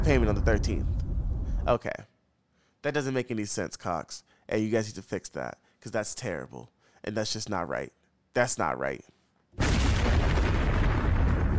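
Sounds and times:
speech: 0.0s - 1.0s, 1.6s - 2.1s, 2.8s - 10.2s
explosion sound effect with rumbling roar and crackling debris: 9.6s - 11.5s.

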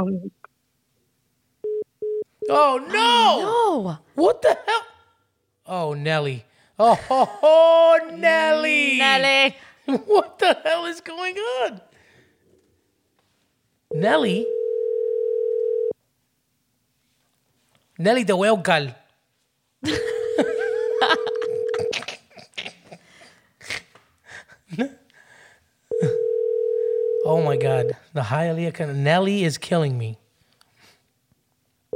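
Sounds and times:
speech: 0.0s - 0.4s, 2.4s - 4.9s, 5.7s - 11.9s, 13.9s - 14.6s, 18.0s - 19.0s, 19.8s - 20.5s, 24.7s - 25.0s, 27.3s - 30.2s
excited talking: 2.5s - 5.0s, 5.7s - 11.9s
telephone dial tone during a live phone call: 14.4s - 15.9s, 20.2s - 21.9s, 25.9s - 27.9s
people laughing: 19.9s - 23.3s.

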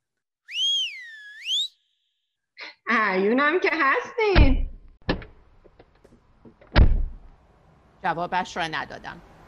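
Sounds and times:
man giving a long loud whistle: 0.4s - 2.1s
speech: 3.0s - 4.6s, 8.0s - 9.3s.

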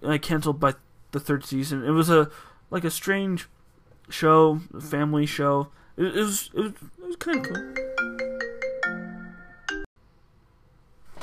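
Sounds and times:
speech: 0.0s - 7.8s
MacBook laptop electronic ringtone for incoming phone call: 7.3s - 9.9s.

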